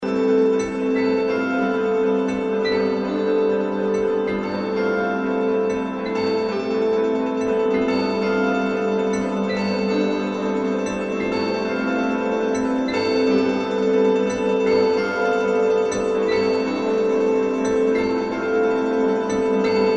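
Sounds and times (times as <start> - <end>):
weird piano: 0.0 - 19.9.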